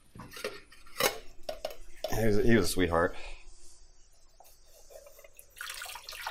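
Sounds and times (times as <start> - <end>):
speech: 2.2 - 3.4
hot water draining from a pot of boiled potatoes: 5.4 - 6.2.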